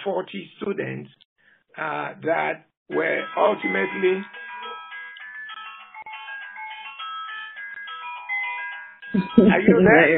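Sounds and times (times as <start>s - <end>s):
speech: 0.0s - 4.4s, 9.1s - 10.1s
cell phone ringtone with bright electronic melody: 2.9s - 10.1s.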